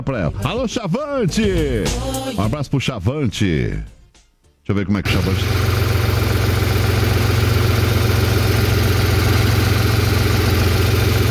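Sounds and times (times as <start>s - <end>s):
speech: 0.0s - 4.0s, 4.7s - 5.8s
truck engine idling, heard from inside the cab: 5.1s - 11.2s.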